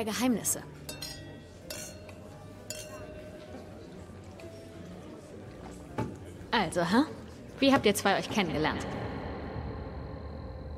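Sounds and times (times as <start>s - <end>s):
speech: 0.0s - 0.8s, 6.6s - 9.0s
steady low murmur of room noise: 0.0s - 10.7s
glasses clinking in a toast: 0.9s - 3.8s.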